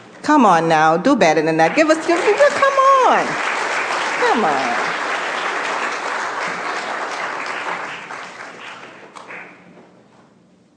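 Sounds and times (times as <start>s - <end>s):
speech: 0.3s - 3.5s, 4.2s - 5.0s
large crowd applauding: 1.6s - 9.6s.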